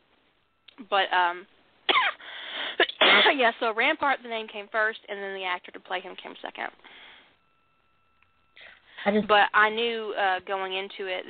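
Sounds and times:
speech: 0.8s - 1.6s, 3.2s - 6.9s, 9.0s - 11.2s
person coughing: 1.9s - 2.2s, 2.8s - 3.4s.

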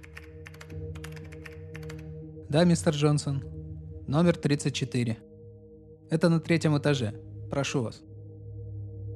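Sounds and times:
computer keyboard typing: 0.0s - 2.1s
speech: 2.5s - 3.5s, 4.1s - 5.3s, 6.1s - 8.1s.

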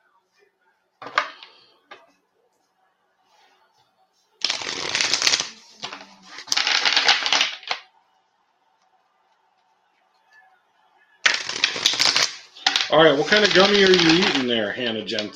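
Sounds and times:
deck of cards being riffle shuffled: 4.4s - 7.8s, 11.3s - 14.5s
speech: 13.0s - 15.3s.

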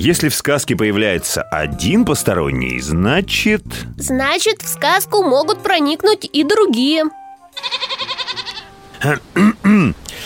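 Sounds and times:
speech: 0.0s - 8.0s, 9.0s - 10.2s
goat giving a loud quavering bleat: 7.6s - 8.8s.

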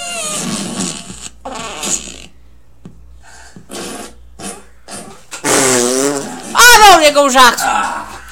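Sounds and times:
fart-sound version of a song: 0.0s - 2.4s, 3.6s - 6.6s
speech: 7.1s - 7.9s.

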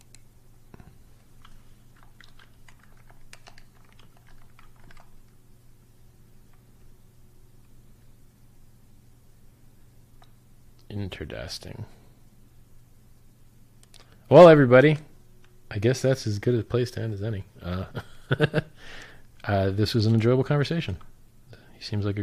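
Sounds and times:
low steady hum: 0.0s - 22.2s
typing on a computer keyboard: 1.4s - 5.1s
speech: 11.1s - 12.0s, 14.3s - 15.1s, 15.7s - 18.7s, 19.4s - 21.1s, 21.8s - 22.2s.

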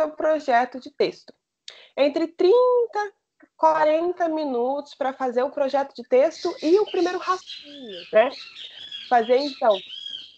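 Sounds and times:
speech: 0.0s - 10.0s
thin high bird chirping: 6.1s - 10.3s.

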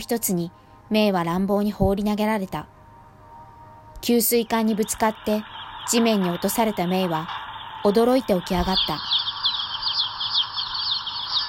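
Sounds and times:
speech: 0.0s - 2.8s, 4.0s - 9.2s
many chicks cheeping on a poultry farm: 4.6s - 11.4s.

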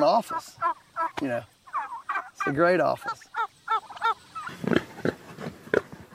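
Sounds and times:
speech: 0.0s - 1.6s, 2.4s - 3.3s
pigs grunting in a paddock on a farm: 4.3s - 6.1s.

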